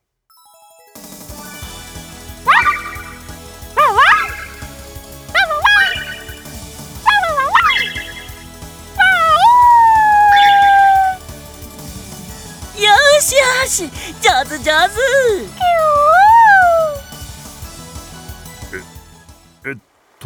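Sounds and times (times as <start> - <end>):
puppy barking and yelping while performing a trick: 2.5 - 8.5, 9.0 - 11.2, 15.1 - 17.1
speech: 13.8 - 15.9, 19.7 - 20.2.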